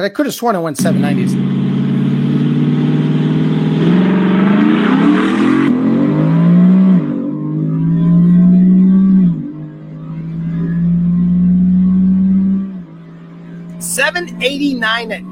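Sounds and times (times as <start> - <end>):
speech: 0.0 - 1.7, 14.1 - 15.3
single cab truck engine accelerating down a drag strip: 0.8 - 15.3.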